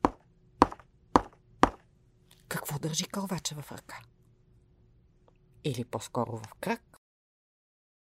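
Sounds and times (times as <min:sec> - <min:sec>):
woodpecker pecking on wood in a forest: 0:00.0 - 0:01.8
faint low hum: 0:00.0 - 0:07.0
speech: 0:02.7 - 0:04.2, 0:05.6 - 0:06.9.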